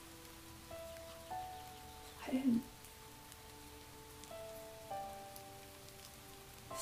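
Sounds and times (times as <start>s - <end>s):
steady rain: 0.0s - 6.8s
speech: 2.3s - 2.8s.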